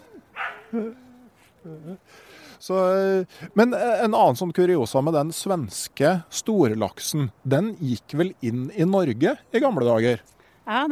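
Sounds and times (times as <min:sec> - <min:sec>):
dog whiny yelp: 0:00.2 - 0:00.8
dogs barking: 0:00.3 - 0:00.8
speech: 0:00.7 - 0:01.0, 0:01.6 - 0:10.9.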